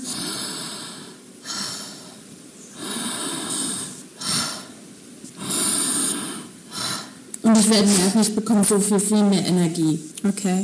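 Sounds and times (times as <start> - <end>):
long deep breathing through the mouth as a breathing exercise: 0.0 - 7.2
speech: 7.6 - 10.6.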